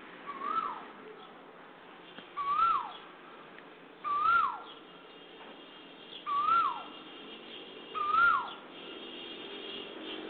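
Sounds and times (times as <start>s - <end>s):
Asian koel giving upslurred whistled calls: 0.3s - 0.9s, 2.3s - 3.0s, 4.0s - 4.8s, 6.1s - 7.0s, 7.9s - 8.6s.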